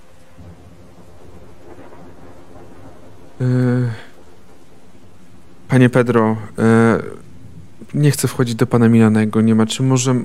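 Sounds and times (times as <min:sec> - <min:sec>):
low continuous thunder rumble: 0:00.0 - 0:10.2
steady rain pouring outside: 0:00.0 - 0:10.2
speech: 0:03.4 - 0:04.0, 0:05.8 - 0:07.2, 0:07.9 - 0:10.2.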